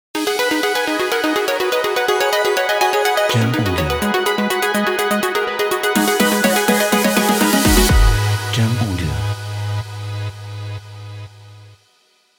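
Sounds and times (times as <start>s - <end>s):
energetic EDM logo jingle: 0.2s - 9.5s.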